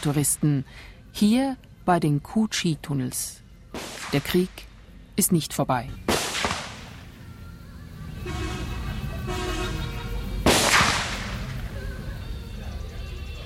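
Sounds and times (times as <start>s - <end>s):
speech: 0.0s - 6.2s
constant rumbling background: 0.0s - 13.4s
gunshots from real war weapons at a tourist shooting range: 3.8s - 4.5s, 6.0s - 7.1s, 10.4s - 11.6s.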